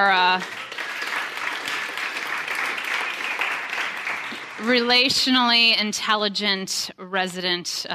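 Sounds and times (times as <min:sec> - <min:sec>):
speech: 0:00.0 - 0:00.6, 0:04.6 - 0:07.9
audience applause: 0:00.0 - 0:04.9.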